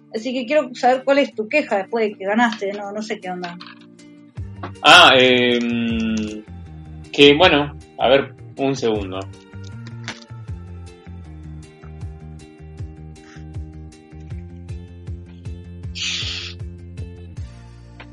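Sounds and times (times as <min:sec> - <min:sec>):
speech: 0:00.1 - 0:03.8, 0:04.8 - 0:06.5, 0:07.1 - 0:09.4
slurping tereré through a straw: 0:13.2 - 0:13.6, 0:16.0 - 0:16.6.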